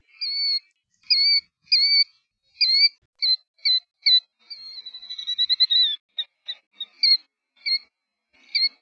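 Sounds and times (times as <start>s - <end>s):
killdeer calls: 0.0s - 7.9s, 8.5s - 8.8s.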